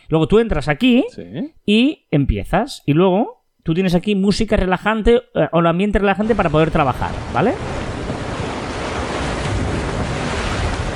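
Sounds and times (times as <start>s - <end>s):
speech: 0.1s - 7.8s
steady ocean surf: 6.2s - 10.9s
low rumble of wind: 6.3s - 10.9s.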